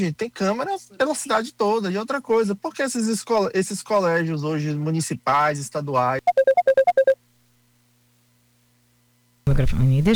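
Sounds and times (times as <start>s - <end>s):
speech: 0.0s - 7.1s, 9.5s - 10.1s
phone ringtone beeps for an incoming call: 6.2s - 7.2s.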